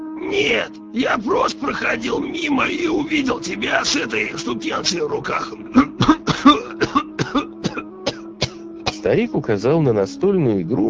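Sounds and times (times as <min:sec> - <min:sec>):
speech: 0:00.3 - 0:05.9, 0:09.1 - 0:10.8
old man's hoarse coughing fit: 0:05.6 - 0:09.1.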